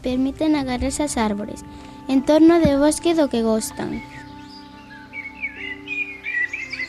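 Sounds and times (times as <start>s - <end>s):
speech: 0.0s - 4.2s
common blackbird singing: 3.6s - 6.8s.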